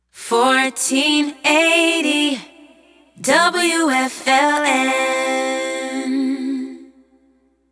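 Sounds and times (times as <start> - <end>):
a cappella jingle singing: 0.2 - 7.6.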